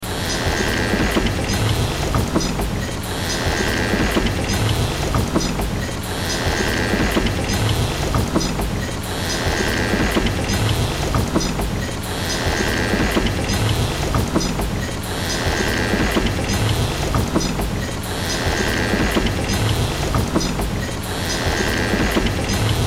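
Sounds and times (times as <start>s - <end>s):
mechanical steampunk sci-fi workshop machines: 0.0s - 22.8s
large wooden mechanical movement: 0.8s - 22.8s.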